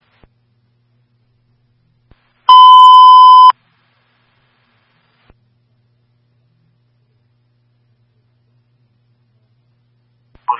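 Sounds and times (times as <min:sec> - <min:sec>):
loud electronic alarm beep with steady high tone: 0:02.5 - 0:03.5.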